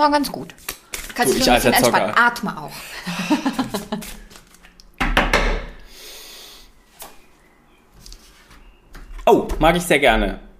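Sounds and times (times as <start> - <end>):
speech: 0.0 - 4.0, 9.3 - 10.5
playing cards shuffled by hand for a card reading: 0.5 - 1.6, 3.9 - 4.7
laughter: 2.9 - 4.2.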